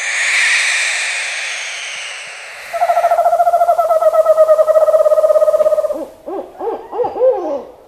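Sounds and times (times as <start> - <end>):
harsh hissing barn owl screech: 0.0 - 6.0
barred owl rising and falling hoots: 1.0 - 7.8
eastern screech owl rapid whinnying trill: 2.5 - 7.7.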